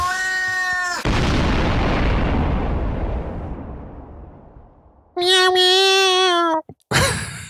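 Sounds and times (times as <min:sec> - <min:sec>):
cat meowing: 0:00.0 - 0:01.1, 0:05.2 - 0:06.8
explosion: 0:01.0 - 0:05.1.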